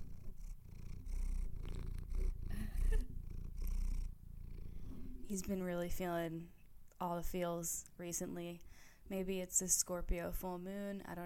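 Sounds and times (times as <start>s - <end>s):
cat purring loudly: 0.0s - 6.6s
speech: 5.3s - 11.2s.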